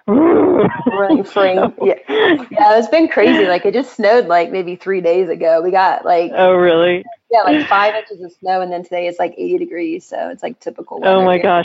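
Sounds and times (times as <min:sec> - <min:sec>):
person imitating the roaring of a fire in a little office fireplace: 0:00.0 - 0:00.9
speech: 0:00.1 - 0:11.6
laughter: 0:00.2 - 0:03.6, 0:06.4 - 0:08.0.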